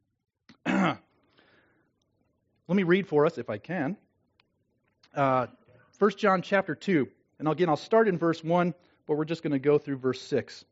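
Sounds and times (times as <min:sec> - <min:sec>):
husky cough from someone fighting an illness: 0:00.6 - 0:01.1
speech: 0:02.7 - 0:04.0, 0:05.2 - 0:10.7.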